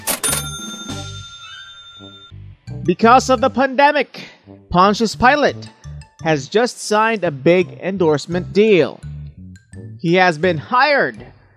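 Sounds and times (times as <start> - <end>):
cash register mechanical clicks: 0.0 - 1.8
cash register bright bell ring: 0.0 - 2.4
speech: 2.9 - 9.1, 10.0 - 11.4.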